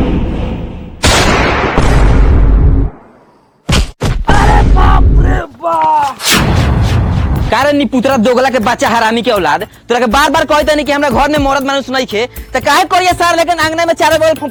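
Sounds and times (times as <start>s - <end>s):
sharp bangs: 0.0s - 5.0s, 6.1s - 7.7s
gunshot fired into the air: 0.1s - 4.9s, 6.2s - 7.5s
speech: 7.5s - 14.4s.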